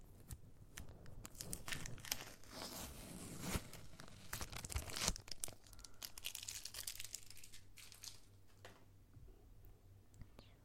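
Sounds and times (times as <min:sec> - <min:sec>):
something being torn open with crinkly rips: 0:00.2 - 0:08.6.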